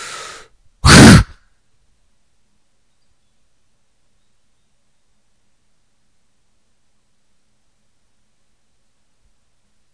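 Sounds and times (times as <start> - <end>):
quick soft breath in during guided relaxation exercise: 0.0 - 1.4.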